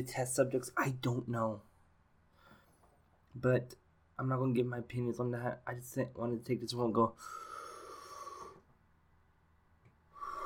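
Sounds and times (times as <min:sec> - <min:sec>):
speech: 0:00.0 - 0:01.7, 0:03.4 - 0:07.5
deep forceful breath drawn in: 0:02.3 - 0:02.8, 0:07.2 - 0:08.7, 0:10.1 - 0:10.4.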